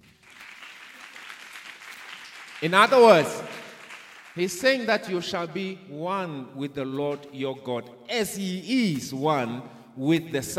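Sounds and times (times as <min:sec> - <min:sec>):
congregation clapping hands: 0:00.0 - 0:05.1
speech: 0:02.6 - 0:03.5, 0:04.4 - 0:10.5.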